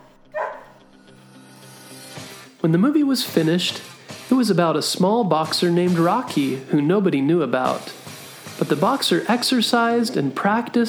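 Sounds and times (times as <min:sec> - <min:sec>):
single short dog bark: 0:00.0 - 0:00.8
speech: 0:02.6 - 0:08.0, 0:08.6 - 0:10.8.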